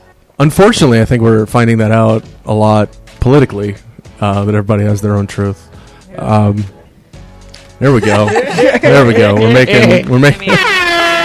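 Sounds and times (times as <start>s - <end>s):
speech: 0.4s - 6.8s, 7.8s - 10.7s
laughter: 7.8s - 11.2s
brassy air horn blasts: 10.5s - 11.2s.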